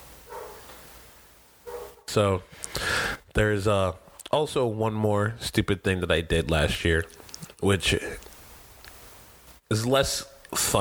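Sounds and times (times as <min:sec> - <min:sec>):
dogs barking: 0:00.2 - 0:00.7, 0:01.6 - 0:02.1
speech: 0:02.1 - 0:08.3, 0:09.7 - 0:10.7.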